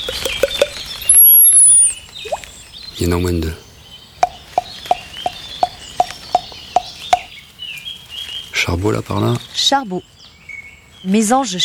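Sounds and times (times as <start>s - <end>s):
long-tailed tit high thin seee note: 0.0s - 2.6s, 4.2s - 7.3s
long-tailed tit chirping: 0.0s - 11.3s
speech: 3.0s - 3.6s, 8.7s - 10.2s, 11.0s - 11.6s.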